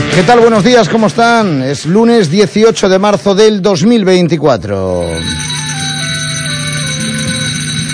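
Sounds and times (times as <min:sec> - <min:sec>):
speech: 0:00.2 - 0:05.7
bells ringing: 0:04.9 - 0:07.9.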